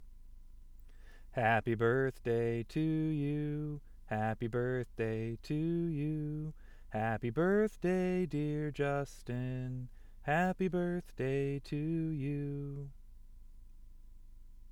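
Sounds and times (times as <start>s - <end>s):
people singing birthday song with lyrics: 1.4s - 12.9s.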